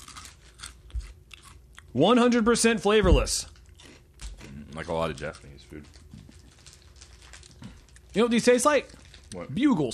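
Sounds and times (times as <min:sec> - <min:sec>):
crunchy chewing of a crouton-like Japanese snack: 0:00.0 - 0:01.9, 0:03.4 - 0:08.2
speech: 0:02.0 - 0:03.5, 0:04.8 - 0:06.0, 0:08.2 - 0:09.9.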